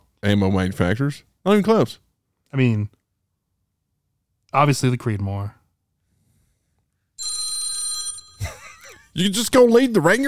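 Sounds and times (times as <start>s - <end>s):
speech: 0.2s - 3.0s, 4.5s - 5.6s, 9.2s - 10.2s
mobile phone ringing with electronic tone: 7.2s - 10.2s
laughter: 8.4s - 9.4s.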